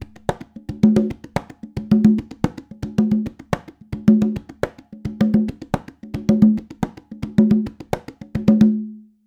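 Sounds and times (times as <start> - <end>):
latin conga loop: 0.0 - 8.9.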